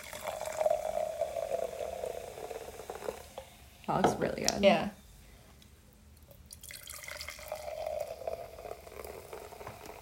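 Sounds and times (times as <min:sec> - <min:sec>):
sparkling drink poured from a can into a glass: 0:00.0 - 0:03.6, 0:06.5 - 0:09.9
speech: 0:03.9 - 0:05.0.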